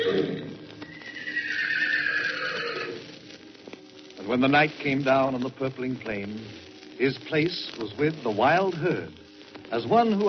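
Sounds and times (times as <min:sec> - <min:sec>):
single horse neighing with a long quavering whinny: 0:00.0 - 0:03.0
speech: 0:04.3 - 0:10.2.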